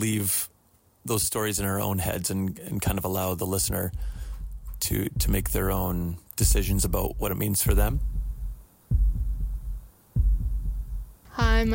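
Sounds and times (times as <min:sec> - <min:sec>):
speech: 0:00.0 - 0:04.2, 0:04.8 - 0:08.2, 0:11.4 - 0:11.7
heartbeat made from river and gravel samples: 0:03.6 - 0:11.7.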